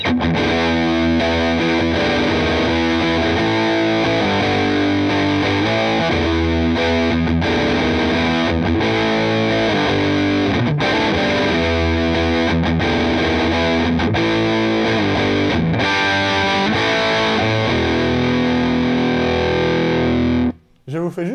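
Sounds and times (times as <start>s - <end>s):
electric guitar through an overdrive pedal with gain turned fully up: 0.0s - 20.7s.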